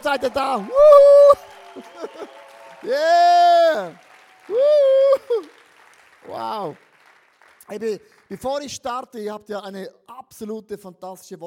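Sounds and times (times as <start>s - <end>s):
speech: 0.0s - 5.6s, 6.2s - 6.9s, 7.7s - 11.4s
loud drawn-out voiced cheers and whoops: 0.0s - 6.8s
crowd clapping: 0.0s - 8.8s
laughter: 1.7s - 2.4s.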